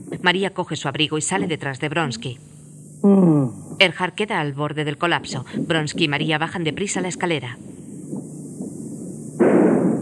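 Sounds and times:
speech: 0.2 - 7.7
low murky rumble: 3.6 - 10.0
gunshot inside a house: 9.4 - 10.0.

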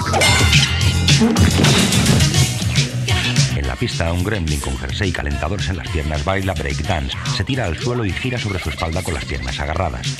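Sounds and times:
mallet blow to someone's head: 0.2 - 3.1
speech: 3.8 - 10.1.

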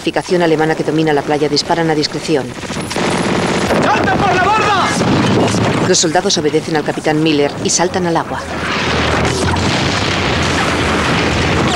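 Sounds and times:
speech: 0.0 - 2.9, 3.8 - 9.5
grenade exploding on the shore during a beach landing: 1.2 - 11.7.

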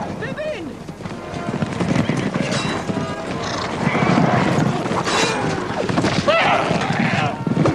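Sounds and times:
many cavalry horse hooves pounding: 0.0 - 7.7
cavalry horses whinnying: 1.8 - 7.7
cavalry riders shouting: 6.2 - 7.5.

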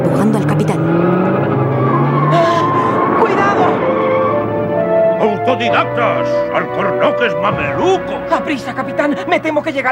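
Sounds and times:
car engine roaring: 0.0 - 9.8
car tires squealing in a skid: 0.7 - 6.5
speech: 5.6 - 9.9.

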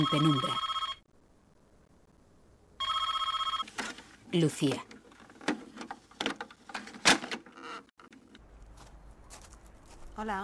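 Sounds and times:
speech: 0.0 - 0.7, 4.3 - 4.9, 10.2 - 10.4
telephone ringing in a trilling bell tone: 0.0 - 1.1, 2.8 - 3.7.

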